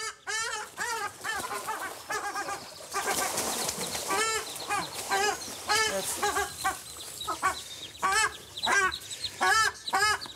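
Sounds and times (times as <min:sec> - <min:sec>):
ruddy shelducks honking: 0:00.0 - 0:10.3
ruddy shelducks wing flapping: 0:00.6 - 0:06.9.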